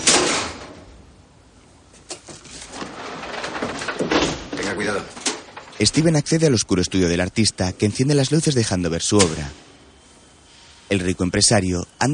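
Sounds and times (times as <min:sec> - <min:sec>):
hiss: 0:00.0 - 0:12.1
door being opened in a building over 100 years old: 0:02.1 - 0:06.7, 0:09.0 - 0:09.7
speech: 0:04.8 - 0:05.2, 0:05.8 - 0:09.7, 0:10.9 - 0:12.1.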